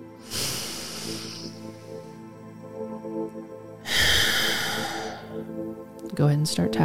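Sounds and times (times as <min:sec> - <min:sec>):
deep breath drawn in during a guided relaxation breathing exercise: 0:00.2 - 0:02.5, 0:03.8 - 0:05.6
speech: 0:06.1 - 0:06.8.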